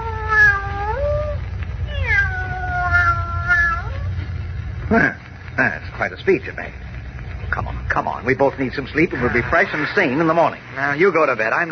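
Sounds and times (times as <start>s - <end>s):
cat meowing: 0.0s - 4.1s
low steady rumble: 0.0s - 10.8s
speech: 6.1s - 6.8s, 8.0s - 11.6s.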